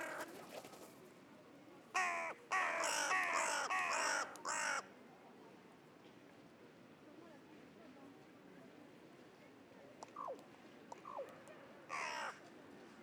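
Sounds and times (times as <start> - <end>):
carrion crow Corvus corone cawing: 2.0 - 4.8, 11.9 - 12.4.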